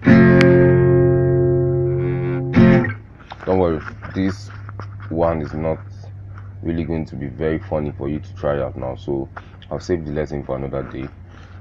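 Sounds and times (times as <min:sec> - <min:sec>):
deep barre chord strummed on a guitar: 0:00.0 - 0:03.0
speech: 0:03.5 - 0:05.9, 0:06.6 - 0:11.2.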